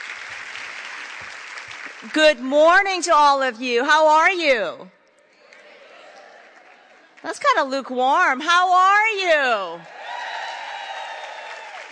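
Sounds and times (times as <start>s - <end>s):
large crowd cheering and applauding: 0.0s - 2.2s, 5.4s - 7.3s, 9.8s - 11.9s
speech: 2.0s - 5.0s, 7.2s - 10.0s.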